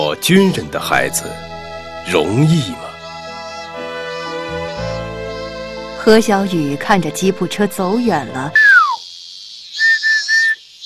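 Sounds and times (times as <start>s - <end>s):
speech: 0.1s - 2.9s, 6.0s - 8.6s
person whistling while riding a bicycle: 8.6s - 9.0s.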